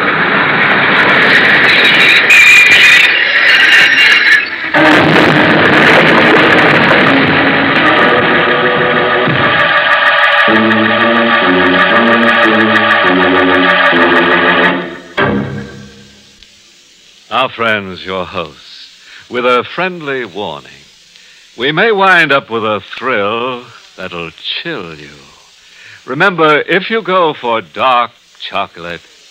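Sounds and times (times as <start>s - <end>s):
train pulling into a station: 0.0s - 16.4s
train hissing: 0.0s - 29.2s
rhythmic pulsing tones: 0.9s - 16.3s
speech: 17.5s - 18.6s, 19.3s - 20.8s, 21.6s - 25.3s, 26.1s - 29.1s.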